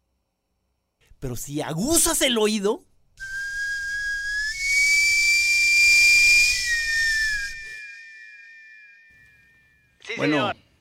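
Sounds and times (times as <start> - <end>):
speech: 1.2 - 3.3, 10.2 - 10.6
radio transition sting steam-whistle tone stepping up in pitch: 3.2 - 10.0.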